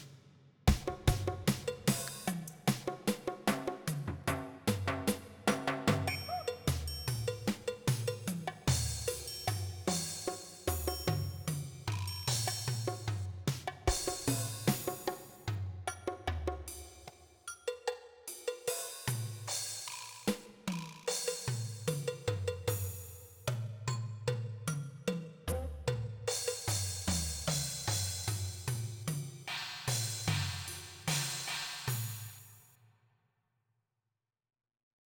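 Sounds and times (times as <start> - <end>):
electronic music with percussion: 0.7 - 32.7.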